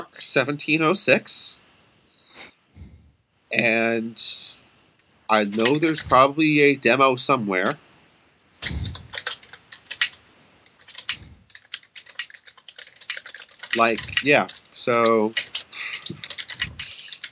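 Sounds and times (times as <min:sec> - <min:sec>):
speech: 0:00.2 - 0:01.6, 0:03.5 - 0:04.6, 0:05.3 - 0:07.9, 0:08.6 - 0:09.0, 0:13.8 - 0:15.5
typing on a computer keyboard: 0:05.3 - 0:06.3, 0:08.4 - 0:17.3.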